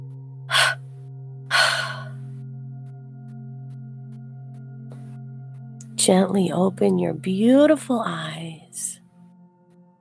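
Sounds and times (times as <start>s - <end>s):
airy exhale out of the mouth in a guided relaxation exercise: 0.5s - 0.8s, 1.5s - 2.2s
breath in through the nose in a guided relaxation exercise: 0.5s - 0.8s, 1.5s - 2.2s
steady low sustained drone: 0.5s - 0.8s, 1.5s - 2.7s
speech: 6.0s - 9.0s.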